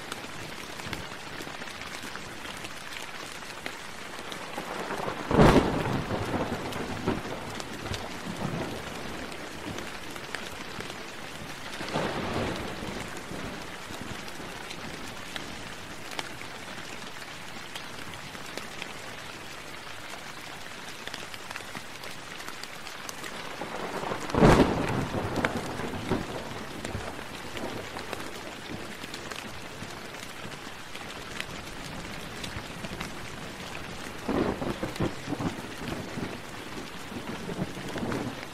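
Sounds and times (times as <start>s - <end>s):
steady rain: 0.0s - 38.5s
thunder rumbling: 4.4s - 10.0s, 23.4s - 29.0s, 31.9s - 38.5s.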